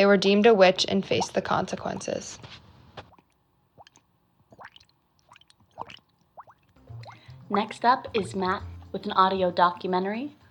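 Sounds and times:
speech: 0.0 - 2.6, 7.5 - 10.4
bubbles rising and popping in water: 3.8 - 7.7.

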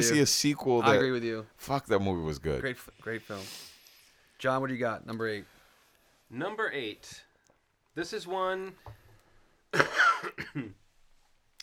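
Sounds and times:
speech: 0.0 - 3.7, 4.4 - 5.6, 6.3 - 7.3, 8.0 - 9.0, 9.7 - 10.8
loud raspy cough: 9.7 - 10.8.

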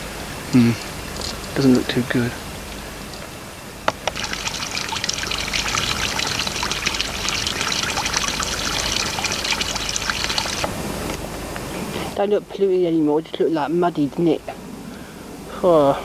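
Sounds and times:
speech: 0.5 - 0.9, 1.6 - 2.4, 12.2 - 14.6, 15.6 - 16.0
water trickling and splashing while collecting a sample: 3.9 - 11.1.

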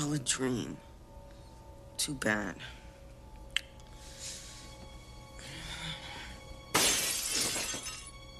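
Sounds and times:
speech: 0.0 - 0.9, 2.0 - 2.8
window glass shattering: 6.7 - 8.1
glass debris tinkling: 6.8 - 8.1.

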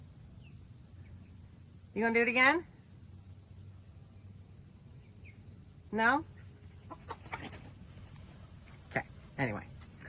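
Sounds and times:
low hum: 0.0 - 10.0
speech: 2.0 - 2.7, 5.9 - 6.3, 9.0 - 9.7
rooster clucking: 6.8 - 7.8.

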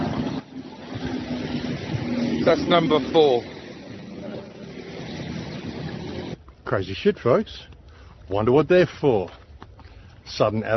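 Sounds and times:
road traffic passing: 0.0 - 8.2
speech: 2.4 - 3.5, 6.7 - 7.7, 8.3 - 9.4, 10.3 - 10.7.

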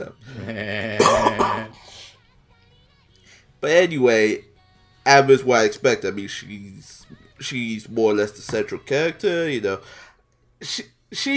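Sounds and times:
speech: 0.0 - 0.9, 3.6 - 10.0, 10.6 - 11.3
harsh wet coughing fit: 0.8 - 1.8
raspy breath: 1.8 - 2.2, 3.2 - 3.5, 9.8 - 10.3.

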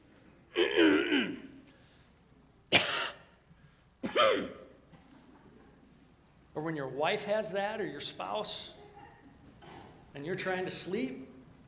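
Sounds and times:
person coughing and clearing throat imitating a throat tickle: 0.5 - 1.5, 2.7 - 3.4, 4.0 - 4.7
speech: 6.6 - 8.8, 10.2 - 11.3.

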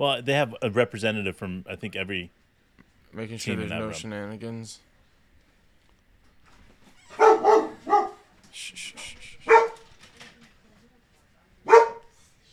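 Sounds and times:
speech: 0.0 - 2.4, 3.1 - 4.9
dog barking: 7.1 - 8.3, 9.4 - 9.9, 11.6 - 12.2.

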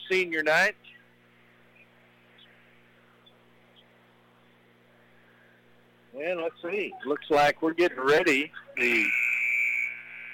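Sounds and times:
speech: 0.1 - 0.9, 6.2 - 9.2
game clock buzzer at end of period: 8.8 - 10.3.

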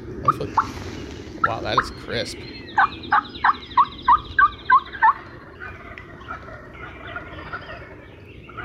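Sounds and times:
many turkeys gobbling outdoors: 0.2 - 2.1, 2.8 - 8.6
speech: 0.4 - 0.8, 1.4 - 3.6.

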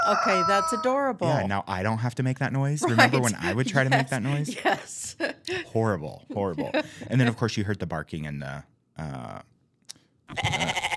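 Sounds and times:
speech: 0.1 - 9.5, 10.3 - 10.9
laughter: 2.8 - 7.5
sheep bleating: 10.3 - 10.9.

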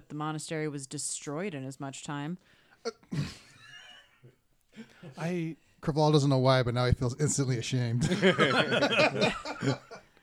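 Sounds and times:
speech: 0.1 - 3.5, 4.8 - 10.0
person imitating a sneeze: 2.9 - 3.5
laughter: 8.0 - 10.1.

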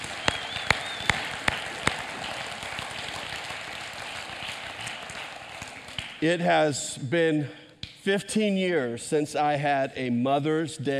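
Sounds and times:
crowd applauding for mothers on Mother's Day: 0.0 - 6.2
sharp claps at a steady even beat: 0.0 - 6.2
speech: 6.2 - 10.9.

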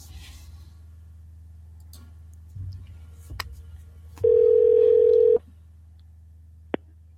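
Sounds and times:
telephone dial tone: 4.3 - 5.4.

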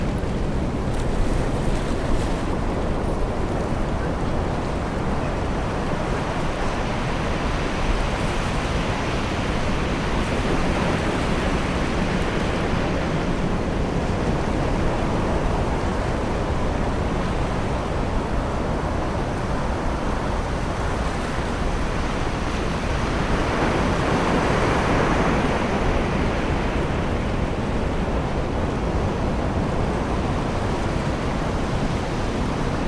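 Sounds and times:
gentle waves at a summer beach: 0.0 - 32.8
wind at a summer beach: 0.0 - 32.8.

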